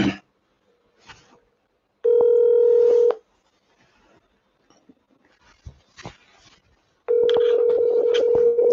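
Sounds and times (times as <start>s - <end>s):
long steady telephone dialing tones: 2.0s - 3.2s, 7.1s - 8.7s
faint rustling: 2.6s - 8.6s.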